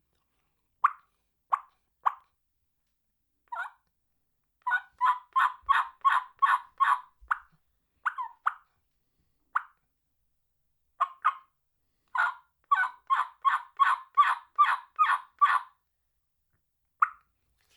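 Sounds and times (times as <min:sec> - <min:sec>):
turkey clucks and purrs on a modified cutter mouth call: 0:00.8 - 0:02.3, 0:03.5 - 0:03.8, 0:04.6 - 0:08.7, 0:09.6 - 0:09.8, 0:11.0 - 0:15.8, 0:17.0 - 0:17.3.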